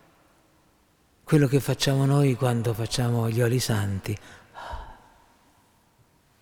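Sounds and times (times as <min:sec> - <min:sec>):
speech: 0:01.3 - 0:04.8
deliberate forceful exhalation: 0:04.2 - 0:05.5.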